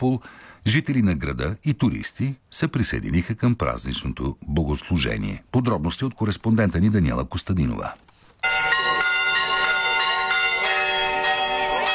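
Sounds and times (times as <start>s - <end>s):
speech: 0.0s - 8.1s
church bells pealing for a feast day: 8.4s - 11.9s.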